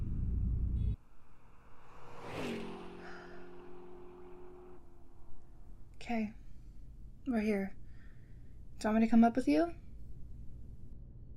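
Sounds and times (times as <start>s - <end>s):
deep engine rumble of road traffic: 0.0s - 8.8s
vehicle whooshing past: 1.0s - 5.9s
speech: 6.1s - 6.4s, 7.2s - 7.8s, 8.8s - 9.8s.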